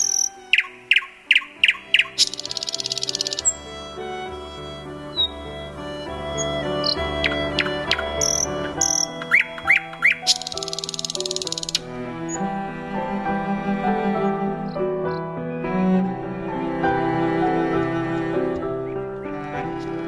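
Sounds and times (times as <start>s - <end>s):
small bird on iron window bars chirping and trilling at night: 0.0s - 12.4s
soft sustained musical background: 0.0s - 20.0s.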